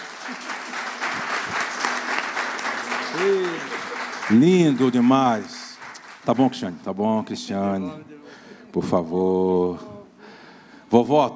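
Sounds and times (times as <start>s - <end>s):
large audience applauding loudly: 0.0s - 6.9s
speech: 3.2s - 3.7s, 4.3s - 5.6s, 6.3s - 9.9s, 10.9s - 11.3s.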